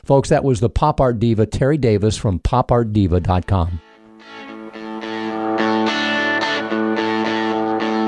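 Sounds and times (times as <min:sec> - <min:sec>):
speech: 0:00.0 - 0:04.4
loud dense instrumental radio bumper music with gritty distorted tone: 0:03.9 - 0:08.0.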